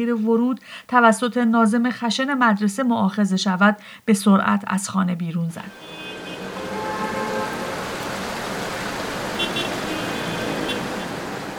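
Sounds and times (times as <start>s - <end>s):
speech: 0.0s - 6.0s
traffic rumbling by on a street: 0.0s - 11.5s
steady rain on a street: 5.9s - 11.5s.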